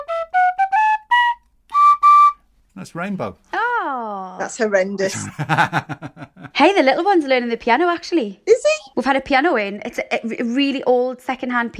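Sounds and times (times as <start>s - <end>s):
penny whistle playing a short halting melody: 0.0s - 2.5s
speech: 2.8s - 11.7s
laughter: 5.1s - 6.6s.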